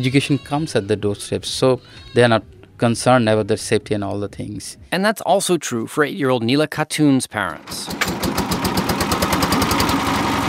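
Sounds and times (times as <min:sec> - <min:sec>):
speech: 0:00.0 - 0:08.4
school boat's diesel engine puttering on a river: 0:07.6 - 0:10.4.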